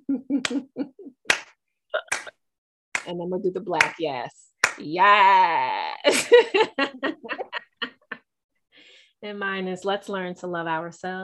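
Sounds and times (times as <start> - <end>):
laughter: 0.0 - 1.3, 6.0 - 8.2
slow hand clapping: 0.4 - 0.7, 1.3 - 2.4, 4.6 - 4.9
speech: 0.5 - 0.8, 3.1 - 7.3, 9.2 - 11.2.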